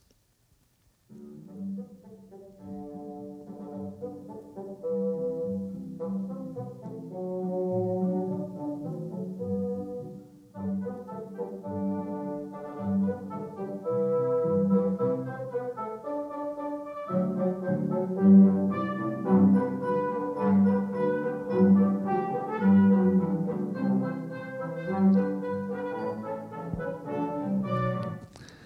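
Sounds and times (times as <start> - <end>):
orchestra playing smooth harmonious symphonic music: 1.4 - 28.4.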